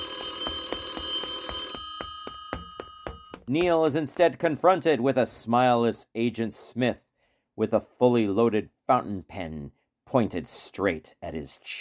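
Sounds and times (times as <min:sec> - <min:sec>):
telephone bell ringing: 0:00.0 - 0:03.5
speech: 0:03.5 - 0:11.7.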